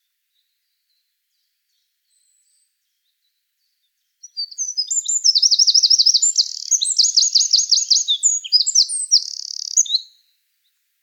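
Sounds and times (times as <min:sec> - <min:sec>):
Eurasian wren Troglodytes troglodytes song with rattling trills and twittering: 0:04.2 - 0:10.2.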